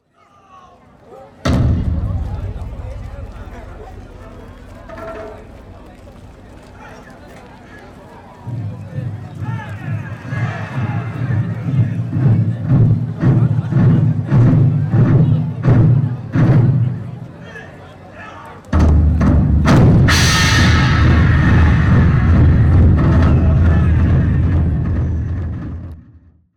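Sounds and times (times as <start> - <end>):
taiko drums in unison: 1.5 - 7.0, 11.2 - 17.1, 18.8 - 26.0.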